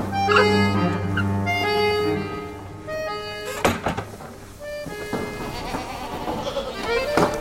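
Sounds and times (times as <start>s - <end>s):
several goats bleating in a busy pen: 0.1s - 2.4s, 5.1s - 7.2s.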